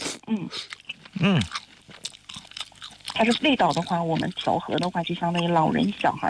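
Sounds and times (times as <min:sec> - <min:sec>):
chewing canned small yellow croaker fish with crisp bones: 0:00.0 - 0:06.2
speech: 0:00.3 - 0:01.6, 0:03.2 - 0:06.2
person humming: 0:01.2 - 0:01.5.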